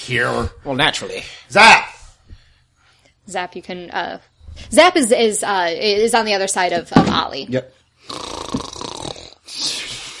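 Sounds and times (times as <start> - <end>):
speech: 0.1 - 1.9, 3.3 - 8.3
person imitating a loud snore: 8.0 - 10.1.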